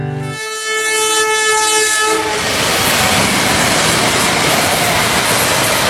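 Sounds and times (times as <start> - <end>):
train horn blast: 0.2 - 2.6
train rumbling past on the tracks: 1.3 - 5.8.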